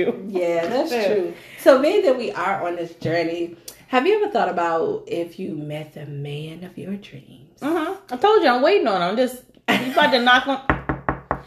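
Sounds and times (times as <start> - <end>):
speech: 0.0 - 10.8
knocking on a door: 10.6 - 11.4.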